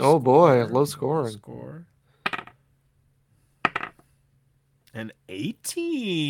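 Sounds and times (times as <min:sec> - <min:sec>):
speech: 0:00.0 - 0:01.9, 0:05.0 - 0:06.2
dice rattling during a dice game: 0:02.3 - 0:02.6, 0:03.6 - 0:04.0.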